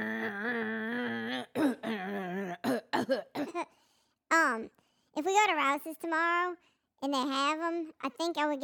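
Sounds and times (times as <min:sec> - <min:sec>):
person clearing throat: 0:00.0 - 0:03.7
speech: 0:03.0 - 0:08.6.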